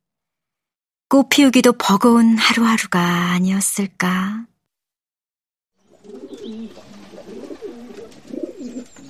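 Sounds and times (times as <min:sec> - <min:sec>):
speech: 0:01.1 - 0:04.5
pigeons nesting inside a juniper tree cooing: 0:05.8 - 0:09.0.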